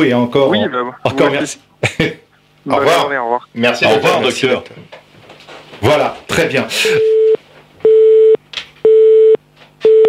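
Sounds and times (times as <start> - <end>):
speech: 0.0 - 5.0, 5.8 - 7.4
telephone busy tone after a call ends: 7.1 - 10.0.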